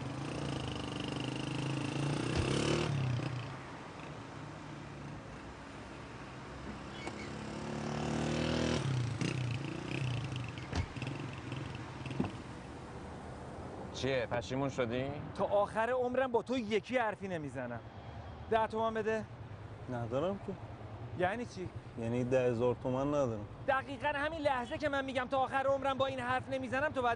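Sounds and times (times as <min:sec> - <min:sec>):
motorcycle taxi engine running and revving: 0:00.0 - 0:03.6, 0:06.8 - 0:12.4
speech: 0:14.0 - 0:17.9, 0:18.5 - 0:27.1.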